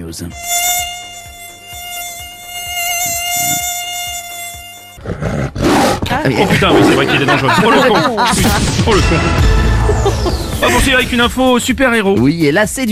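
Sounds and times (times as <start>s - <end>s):
speech: 0.1s - 0.8s, 6.2s - 12.9s
tiger mosquito high-pitched whine: 0.3s - 5.0s
laughter: 6.2s - 11.0s.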